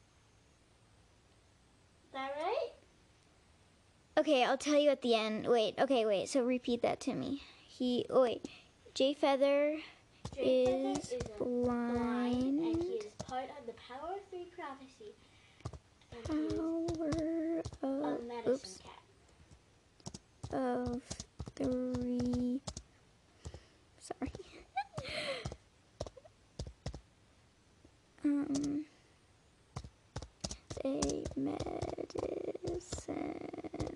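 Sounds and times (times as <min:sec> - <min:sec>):
speech: 0:04.2 - 0:15.2, 0:16.2 - 0:19.0, 0:20.5 - 0:22.7, 0:28.2 - 0:28.9, 0:30.8 - 0:33.9
typing on a computer keyboard: 0:10.2 - 0:13.4, 0:15.6 - 0:17.9, 0:20.0 - 0:23.6, 0:25.0 - 0:27.0, 0:28.5 - 0:28.8, 0:29.8 - 0:33.1.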